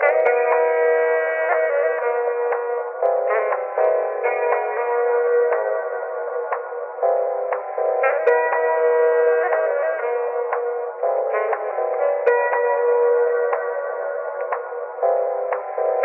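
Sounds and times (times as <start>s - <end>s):
phonky saxophone loop: 0.0s - 6.4s, 7.9s - 14.4s
phonky keys loop: 0.0s - 16.0s.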